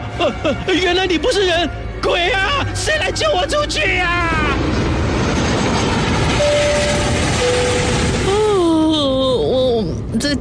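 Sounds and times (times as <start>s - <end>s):
airliner engines roaring before landing at Taoyuan airport: 0.0s - 10.3s
speech: 0.2s - 4.9s, 10.2s - 10.3s.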